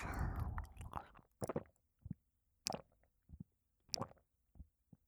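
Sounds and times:
wet chewing and mouth clicks while eating melty tender salmon: 0.0 - 1.6.

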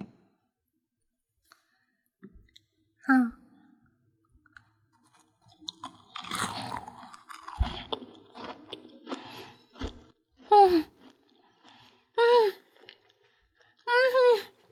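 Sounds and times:
crunching and chewing chocolate snack: 4.5 - 13.9.

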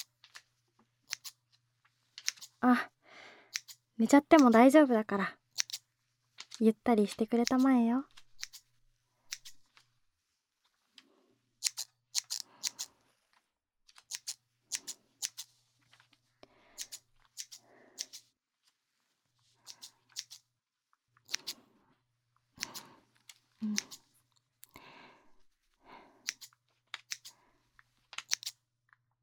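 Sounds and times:
scissors snipping through hair during a haircut: 1.1 - 1.4, 2.2 - 2.6, 3.5 - 4.6, 5.5 - 5.8, 6.4 - 8.7, 9.3 - 9.7, 11.6 - 12.9, 14.0 - 15.5, 16.8 - 18.2, 19.6 - 20.4, 21.2 - 21.6, 22.6 - 23.0, 23.6 - 24.8, 26.2 - 27.4, 28.2 - 28.6
speech: 2.6 - 2.9, 4.0 - 5.4, 6.6 - 8.1.

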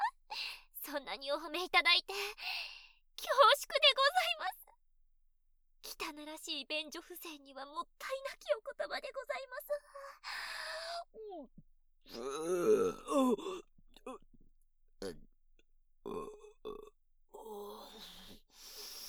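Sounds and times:
speech: 0.9 - 4.6, 5.8 - 10.4, 11.1 - 14.2
loud drawn-out croaky burps: 12.1 - 14.2, 16.1 - 16.9.

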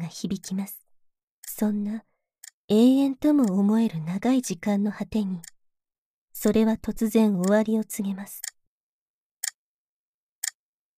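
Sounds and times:
speech: 0.1 - 0.8, 1.6 - 2.1, 2.7 - 5.5, 6.4 - 8.5
clock ticking: 1.4 - 5.6, 6.4 - 8.6.

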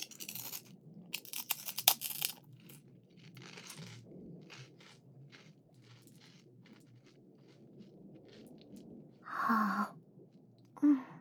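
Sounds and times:
crunchy food being chewed: 0.0 - 9.2.

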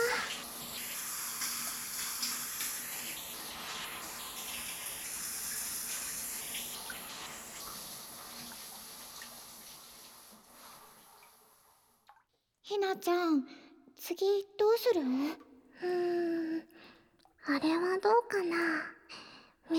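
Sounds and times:
shower water running: 0.0 - 12.0
speech: 12.7 - 16.1, 17.5 - 19.0.

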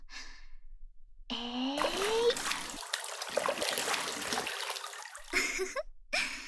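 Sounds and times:
bath water splashing and spilling over the tub: 1.8 - 5.7.

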